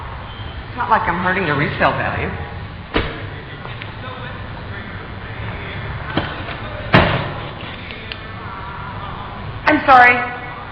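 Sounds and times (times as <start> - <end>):
steady low outdoor rumble: 0.0 - 10.6
speech: 0.8 - 3.1, 9.8 - 10.4
car door slamming into another car: 2.9 - 3.3, 6.2 - 7.4.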